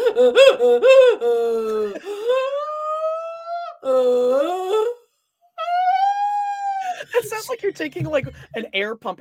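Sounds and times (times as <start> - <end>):
woman moaning like a sea lion: 0.0 - 5.0, 5.6 - 7.3
speech: 0.2 - 2.1, 3.8 - 4.6, 7.4 - 9.1.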